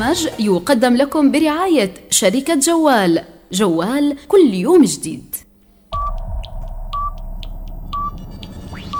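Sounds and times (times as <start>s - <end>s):
speech: 0.0s - 5.4s
radio time-signal pips: 6.0s - 8.9s.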